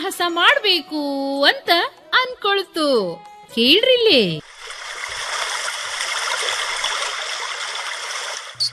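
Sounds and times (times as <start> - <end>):
speech: 0.1 - 4.5
frog swimming in a river: 4.4 - 8.7
water splashing and trickling in a river: 4.4 - 8.7.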